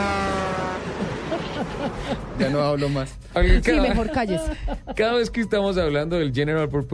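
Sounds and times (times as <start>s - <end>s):
car horn honking: 0.0s - 1.0s
laughter: 0.8s - 5.4s
speech: 1.8s - 6.9s.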